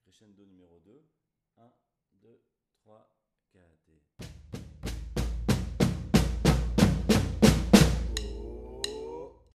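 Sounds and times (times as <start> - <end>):
batucada drumming: 4.2 - 9.3.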